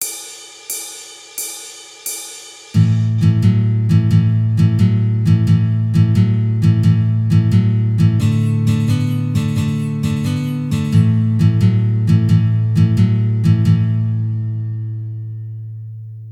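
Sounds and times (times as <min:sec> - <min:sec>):
blues shuffle music: 0:02.8 - 0:15.0.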